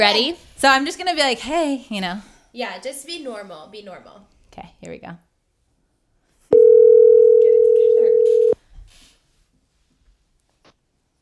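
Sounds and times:
speech: 0:00.0 - 0:05.3
phone ringback tone: 0:06.5 - 0:08.6.

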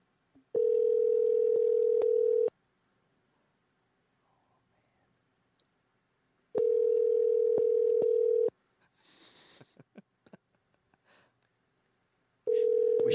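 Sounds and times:
buzzing ringback tones from an outgoing phone call: 0:00.6 - 0:02.5, 0:06.6 - 0:08.5, 0:12.5 - 0:13.1
faint breathing: 0:08.8 - 0:09.8, 0:11.0 - 0:11.4.

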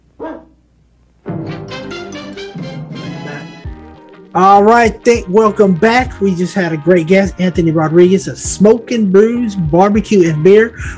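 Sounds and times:
dog barking and yowling: 0:00.2 - 0:00.6
speech: 0:04.4 - 0:10.9.

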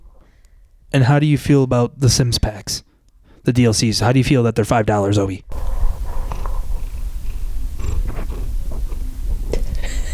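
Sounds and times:
speech: 0:00.9 - 0:05.8
cat purring: 0:05.5 - 0:10.1.

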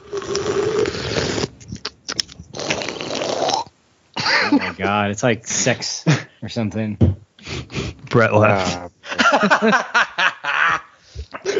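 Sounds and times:
long wet slurps against the microphone: 0:00.0 - 0:03.7
sharp lip smacks and clicks: 0:00.2 - 0:03.6
laughter: 0:04.2 - 0:05.0, 0:08.2 - 0:11.5
speech: 0:04.8 - 0:07.2, 0:08.1 - 0:09.9.

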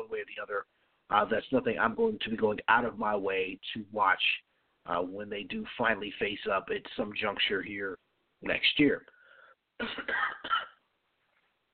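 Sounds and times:
speech: 0:00.2 - 0:09.1, 0:09.8 - 0:10.7
harsh raspy coughs: 0:09.8 - 0:10.9.

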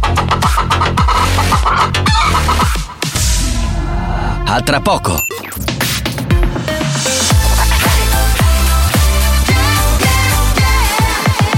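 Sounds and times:
steady musical backing: 0:00.0 - 0:11.5
chicken clucking and squawking: 0:00.1 - 0:03.0
speech: 0:04.6 - 0:05.7.

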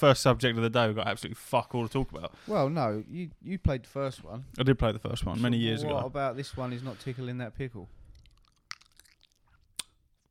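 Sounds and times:
speech: 0:00.0 - 0:08.0
open-mouthed chewing close to a microphone: 0:08.0 - 0:10.2
lip smacks: 0:08.1 - 0:10.2.

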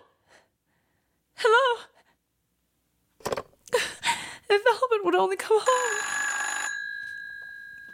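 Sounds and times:
speech: 0:04.6 - 0:06.2
telephone bell ringing: 0:05.6 - 0:07.9.

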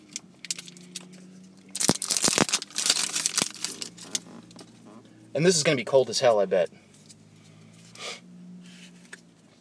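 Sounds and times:
steady low hum: 0:00.0 - 0:09.5
plastic packaging seal torn open with teeth in a car: 0:01.7 - 0:04.7
speech: 0:05.4 - 0:06.8.

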